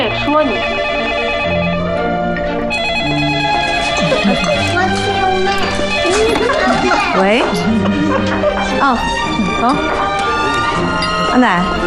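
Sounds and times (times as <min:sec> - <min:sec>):
busy music: 0:00.0 - 0:11.8
telephone ringing with electronic ringtone melody: 0:00.5 - 0:07.9
laughter: 0:03.6 - 0:11.3
speech: 0:08.9 - 0:10.0, 0:11.4 - 0:11.8.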